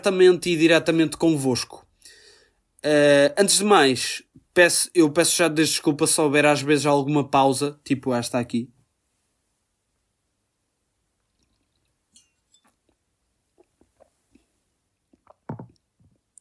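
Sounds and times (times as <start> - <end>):
speech: 0.0 - 1.8, 2.8 - 8.8
person gulping and swallowing water from a glass: 11.2 - 16.3
small liquid movements of water in a glass: 11.3 - 13.0
light clinks of a drinking glass: 11.4 - 13.0.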